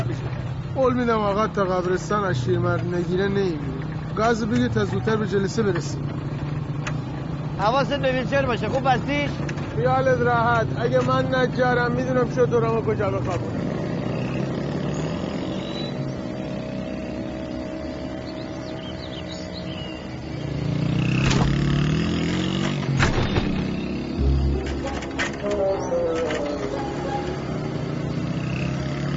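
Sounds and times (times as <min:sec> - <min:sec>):
speech: 0:00.8 - 0:06.3, 0:07.6 - 0:13.8
motor engine revving and sputtering as it breaks down: 0:01.6 - 0:29.1
sharp clanks: 0:21.2 - 0:26.6.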